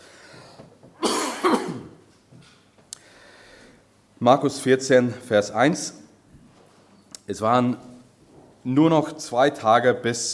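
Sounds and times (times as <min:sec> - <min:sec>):
faint breath: 0:00.0 - 0:00.8, 0:03.0 - 0:03.9
harsh coughs from a person with a two-week cough: 0:01.0 - 0:02.0
speech: 0:04.2 - 0:06.0, 0:07.3 - 0:07.9, 0:08.6 - 0:10.3.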